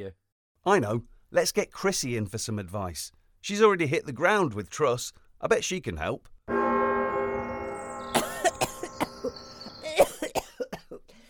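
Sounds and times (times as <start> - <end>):
speech: 0.0 - 6.6
magic bell ringing: 6.5 - 10.0
sharp cough-like bursts: 8.2 - 9.1, 9.8 - 11.0.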